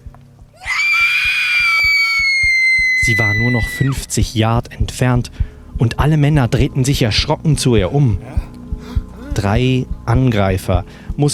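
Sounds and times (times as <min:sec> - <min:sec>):
woman's long piercing desperate scream: 0:00.6 - 0:04.1
steady low thumping beat: 0:01.6 - 0:11.3
speech: 0:03.1 - 0:08.5, 0:09.4 - 0:11.3.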